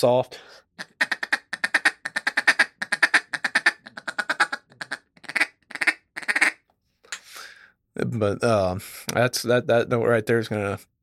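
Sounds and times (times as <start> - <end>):
speech: 0.0 - 1.0, 8.1 - 10.9
feed chuckle blown on a duck call: 0.8 - 6.5.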